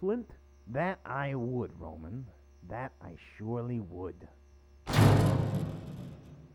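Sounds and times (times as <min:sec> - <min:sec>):
speech: 0:00.0 - 0:05.1
heavy booming thud against a door in an attempt to break it down: 0:04.9 - 0:06.5.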